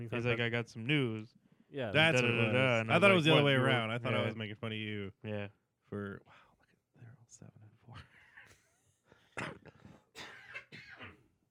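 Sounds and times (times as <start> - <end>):
speech: 0.0 - 6.4, 7.3 - 8.1, 9.4 - 10.3
vocal sounds: 2.0 - 4.5
person with a head cold coughing: 9.4 - 11.2
throat clearing: 9.4 - 11.2.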